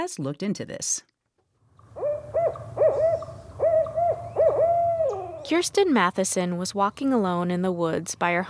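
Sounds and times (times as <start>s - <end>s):
speech: 0.0s - 1.1s, 5.4s - 8.4s
owl hooting: 1.8s - 5.6s.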